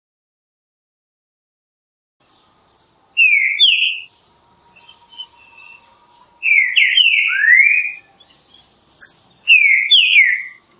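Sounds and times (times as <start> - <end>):
Green-winged saltator singing classic song style for training birds: 3.2 - 4.1, 4.7 - 10.6.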